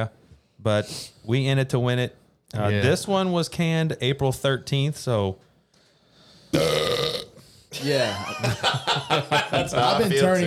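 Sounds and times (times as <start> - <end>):
speech: 0.0 - 5.5, 6.5 - 10.4
loud burp after drinking beer: 6.5 - 7.4
laughter: 7.8 - 10.4.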